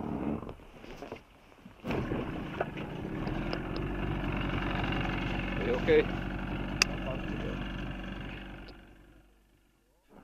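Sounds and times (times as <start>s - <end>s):
boat engine rumbling: 1.8s - 9.5s
speech: 5.7s - 6.2s.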